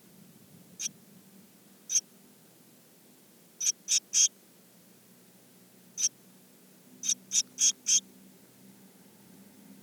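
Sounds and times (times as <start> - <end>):
Eurasian blue tit Cyanistes caeruleus calling: 3.6 - 4.3, 7.0 - 8.0.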